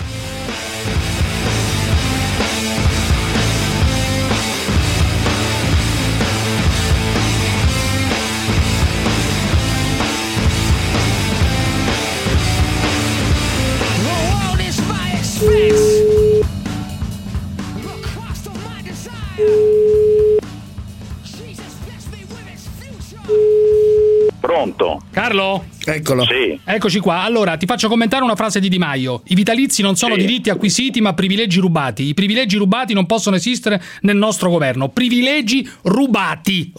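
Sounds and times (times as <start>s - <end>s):
dense music: 0.0s - 23.3s
long evenly spaced beeps: 15.4s - 16.5s, 19.4s - 20.4s, 23.3s - 24.3s
outgoing telephone call ringback tone: 15.4s - 16.5s, 19.4s - 20.4s, 23.3s - 24.3s
speech: 25.3s - 36.7s.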